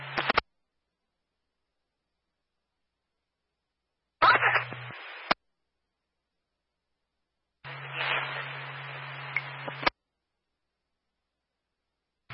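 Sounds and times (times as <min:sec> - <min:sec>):
two-way radio static: 0:00.0 - 0:00.4, 0:04.2 - 0:05.4, 0:07.7 - 0:09.9.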